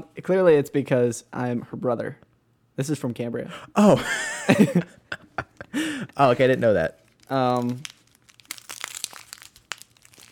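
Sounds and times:
speech: 0.2s - 7.9s
laughter: 3.8s - 6.5s
packaging crinkling and tearing as a heavily taped package is unwrapped: 6.4s - 10.3s.

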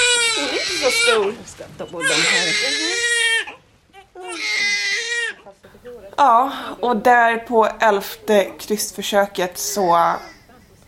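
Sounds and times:
newborn baby crying just after birth: 0.0s - 5.6s, 9.7s - 10.5s
speech: 0.7s - 3.2s, 5.6s - 10.4s.

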